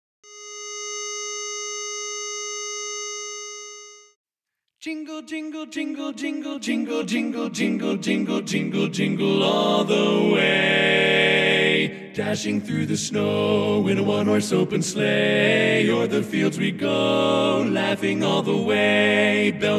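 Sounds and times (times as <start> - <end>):
baritone singing a carol: 4.8 - 19.7.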